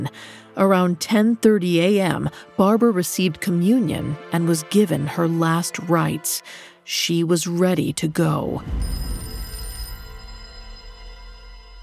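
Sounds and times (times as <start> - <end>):
speech: 0.0 - 9.1
telephone ringing with a high shrill tone: 8.8 - 10.6.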